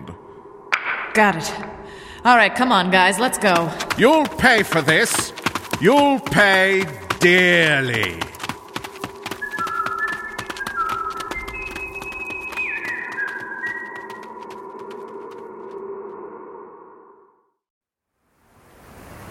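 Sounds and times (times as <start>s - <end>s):
speech: 1.2s - 8.3s
sharp rapid clicks: 3.6s - 12.9s
person whistling sliding melodic notes: 9.3s - 14.3s.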